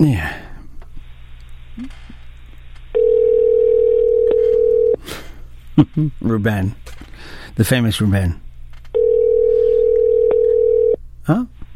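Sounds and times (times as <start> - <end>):
speech: 0.0 - 0.3, 5.8 - 8.4, 11.3 - 11.6
electronic ringback tone of an outgoing phone call: 3.0 - 5.0, 9.0 - 11.0.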